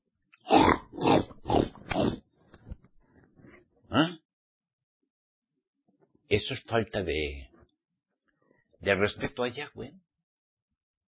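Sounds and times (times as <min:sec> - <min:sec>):
pigs grunting: 0:00.4 - 0:02.3
speech: 0:06.3 - 0:07.5, 0:08.8 - 0:10.0.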